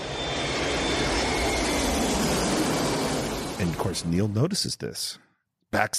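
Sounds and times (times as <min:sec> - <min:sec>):
thin high-pitched jet whine: 0:00.0 - 0:04.4
airplane engine roar as the plane comes in to land: 0:00.0 - 0:04.6
speech: 0:03.9 - 0:05.9.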